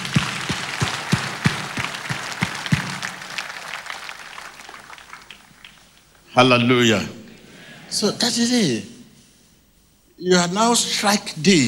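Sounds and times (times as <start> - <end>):
scattered applause from a large crowd: 0.0 - 6.2
congregation clapping in a steady rhythm: 0.0 - 6.3
speech: 6.4 - 7.2, 7.9 - 8.9, 10.2 - 11.6.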